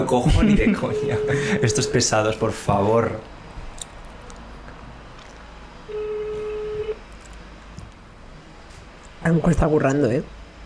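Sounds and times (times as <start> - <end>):
speech: 0.0 - 3.3, 9.3 - 10.4
laughter: 0.2 - 1.9
outgoing phone call ringback tone: 0.8 - 2.1, 5.9 - 7.0.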